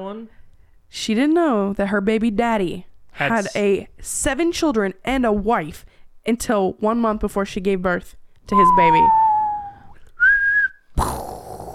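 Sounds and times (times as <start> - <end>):
speech: 0.0 - 9.2
falling bomb whistle sound effect: 8.5 - 10.8.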